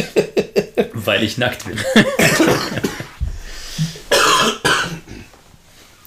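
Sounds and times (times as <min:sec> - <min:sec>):
speech: 0:01.0 - 0:03.0
harsh hacking coughing fit: 0:02.0 - 0:05.3
gasping between coughs: 0:03.3 - 0:04.1.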